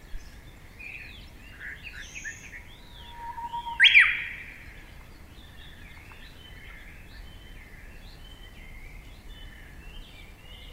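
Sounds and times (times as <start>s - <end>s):
Japanese bush warbler song: 0.0s - 10.7s
soft bird notes: 2.2s - 6.8s.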